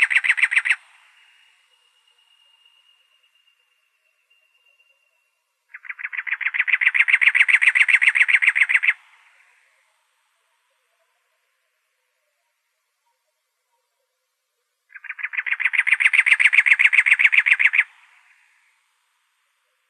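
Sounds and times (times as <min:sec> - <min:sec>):
cactus wren harsh rasping chatter in Arizona: 0:00.0 - 0:01.5, 0:05.7 - 0:09.8, 0:14.9 - 0:18.5.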